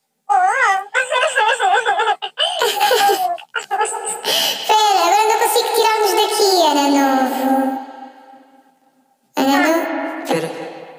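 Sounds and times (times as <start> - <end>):
voices processed through a baby-voice filter talking: 0.3 - 7.8, 9.4 - 10.6
voices processed through a baby-voice filter laughing: 0.8 - 4.5.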